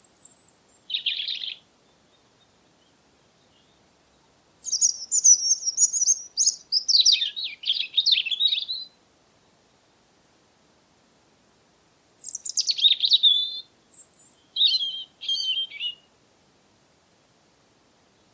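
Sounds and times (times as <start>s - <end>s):
European robin song: 0.0s - 9.6s, 12.2s - 16.1s.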